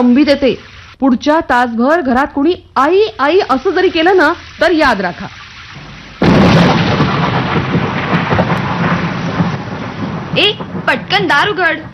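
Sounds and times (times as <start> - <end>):
speech: 0.0 - 5.9, 10.4 - 11.9
faint rumbling of thunder: 2.5 - 11.9
heavy rain pouring: 3.1 - 11.9
thunder crash: 4.0 - 11.9.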